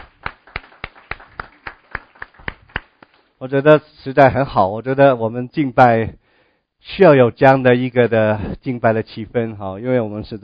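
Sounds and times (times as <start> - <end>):
hand claps in rhythm: 0.0 - 3.3
speech: 3.4 - 6.2, 6.8 - 10.4.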